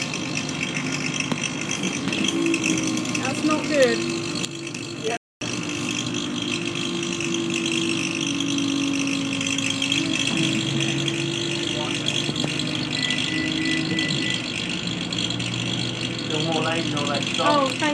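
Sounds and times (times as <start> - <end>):
bus radiator rattling: 0.0 - 17.9
low engine drone: 0.0 - 17.9
speech: 3.7 - 4.3.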